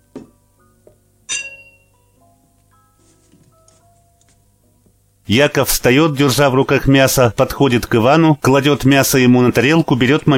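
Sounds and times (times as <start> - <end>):
glasses clinking in a toast: 1.3 - 2.0
speech: 5.3 - 10.3.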